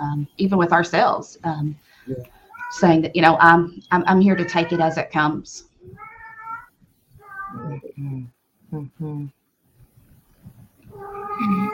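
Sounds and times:
speech: 0.0 - 6.0, 7.8 - 9.4
male cat yowling loudly: 5.9 - 7.9, 10.9 - 11.7.

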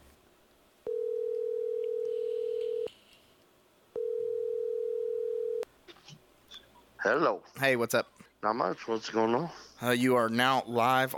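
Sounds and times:
telephone line electronic ring tones: 0.9 - 2.9, 4.0 - 5.6
speech: 7.0 - 11.1.

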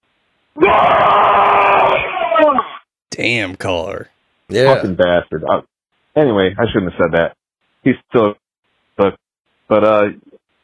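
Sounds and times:
speech: 0.6 - 1.2, 3.2 - 8.4, 9.0 - 10.3
loud human scream: 0.6 - 2.5, 4.5 - 4.9.

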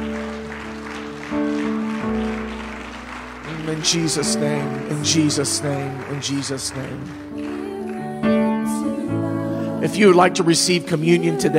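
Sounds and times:
church audience clapping in thanksgiving: 0.0 - 8.5
sustained organ or keyboard chords: 0.0 - 11.5
speech: 3.7 - 7.3, 9.8 - 11.5.

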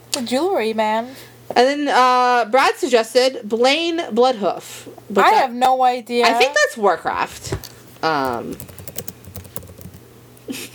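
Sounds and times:
speech: 0.2 - 8.7, 10.5 - 10.7
furious typing on a computer keyboard: 8.3 - 10.0.

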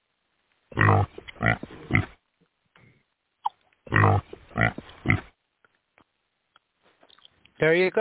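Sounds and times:
pig oinking with grunting snorts: 0.7 - 2.2, 3.9 - 5.3.

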